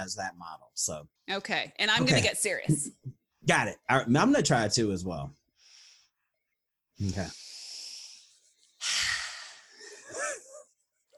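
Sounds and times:
speech: 0:00.0 - 0:05.4, 0:07.0 - 0:07.4
deliberate deep breath during a tapping exercise for anxiety: 0:05.6 - 0:06.3, 0:07.2 - 0:10.4.

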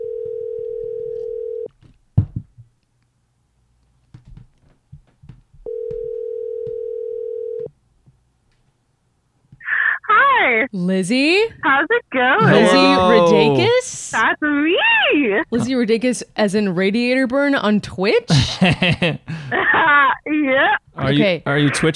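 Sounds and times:
telephone dial tone while placing a call: 0:00.0 - 0:01.7, 0:05.7 - 0:07.7
speech: 0:10.7 - 0:21.9.

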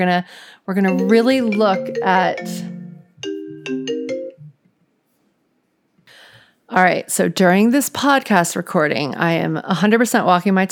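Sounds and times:
speech: 0:00.0 - 0:02.7, 0:06.7 - 0:10.7
mobile phone ringtone: 0:00.9 - 0:04.5.

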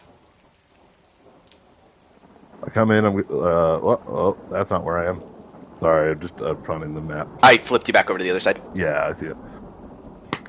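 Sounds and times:
low rolling rumble of thunder: 0:00.0 - 0:10.4
steady dense downpour: 0:00.0 - 0:10.4
speech: 0:02.8 - 0:09.5.

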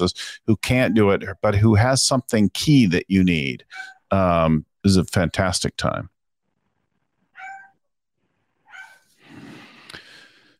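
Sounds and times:
speech: 0:00.0 - 0:06.1
dog left home alone yelping behind closed doors: 0:03.7 - 0:04.1, 0:07.4 - 0:07.8, 0:08.6 - 0:09.1
dog whining: 0:03.8 - 0:04.0, 0:07.4 - 0:07.8, 0:08.7 - 0:09.0.

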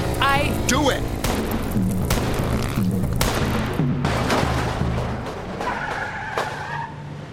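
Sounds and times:
car engine roaring: 0:00.0 - 0:07.3
sharp bangs and thuds: 0:01.2 - 0:06.6
car tire squeal after back tire shot out: 0:04.1 - 0:07.3.

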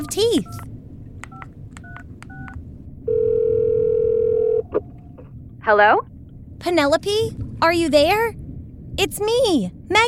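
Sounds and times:
speech: 0:00.0 - 0:00.7, 0:05.7 - 0:08.4, 0:09.0 - 0:10.0
telephone dial tone: 0:01.8 - 0:04.7.

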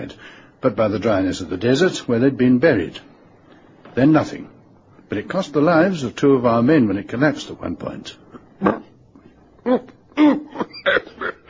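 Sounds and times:
speech: 0:00.0 - 0:03.1, 0:04.0 - 0:08.8, 0:09.6 - 0:11.1
man coughing: 0:09.6 - 0:11.4.

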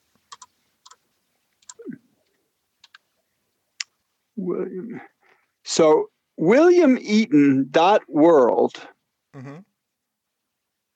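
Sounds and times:
fingers typing on a computer keyboard: 0:00.3 - 0:01.0, 0:02.8 - 0:03.0
speech: 0:04.4 - 0:05.2, 0:05.8 - 0:09.7.

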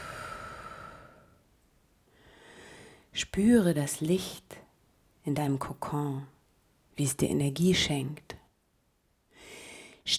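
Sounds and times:
slow soft breathing during a guided meditation: 0:00.0 - 0:01.5, 0:02.1 - 0:03.1
speech: 0:03.2 - 0:04.5, 0:05.2 - 0:06.4, 0:07.0 - 0:08.4.

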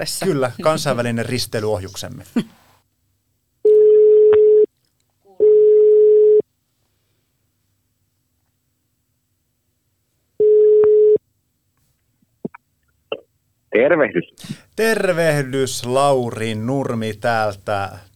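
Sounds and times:
laughter: 0:00.0 - 0:01.2
speech: 0:00.0 - 0:02.6, 0:13.8 - 0:18.1
steady electronic telephone ringing tone: 0:03.7 - 0:04.7, 0:05.4 - 0:06.4, 0:10.4 - 0:11.2.

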